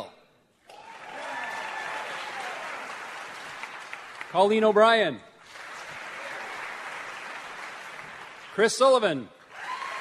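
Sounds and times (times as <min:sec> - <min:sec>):
live show crowd applause: 0:00.7 - 0:04.7, 0:05.4 - 0:08.7, 0:09.5 - 0:10.0
speech: 0:04.3 - 0:05.3, 0:08.6 - 0:09.4.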